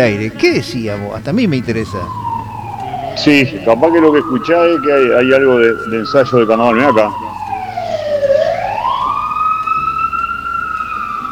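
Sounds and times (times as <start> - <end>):
speech: 0.0 - 2.2, 3.2 - 7.3
emergency vehicle siren responding to a crash of a motorcycle into a taxi: 1.2 - 11.3.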